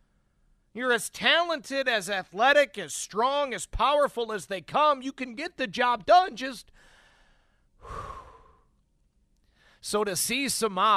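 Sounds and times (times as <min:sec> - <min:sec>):
speech: 0:00.8 - 0:06.9, 0:09.8 - 0:10.9
deep breath before batting: 0:06.7 - 0:08.8, 0:09.4 - 0:09.8.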